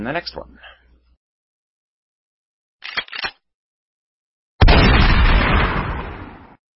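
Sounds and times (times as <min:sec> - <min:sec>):
brief clicks: 0:02.8 - 0:03.4
Mossberg 590 A1 shotgun firing: 0:04.6 - 0:06.6.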